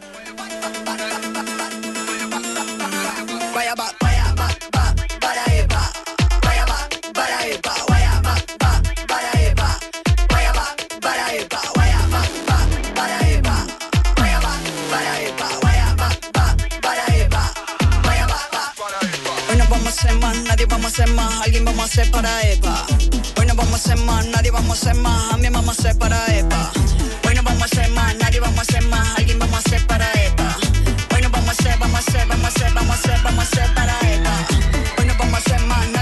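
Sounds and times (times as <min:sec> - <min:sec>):
electronic cumbia track with synth, bass and percussion: 0:00.0 - 0:36.0
speech: 0:03.6 - 0:04.0, 0:21.0 - 0:23.0, 0:23.8 - 0:26.8.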